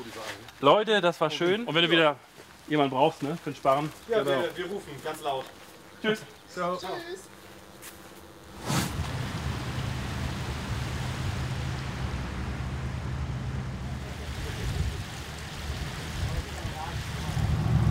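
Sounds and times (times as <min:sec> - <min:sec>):
wind: 0:00.0 - 0:17.9
speech: 0:00.2 - 0:07.3
boat engine rumbling leaving the Elbe side canal onto the Elbe river: 0:08.3 - 0:17.9
water noise: 0:08.4 - 0:17.9.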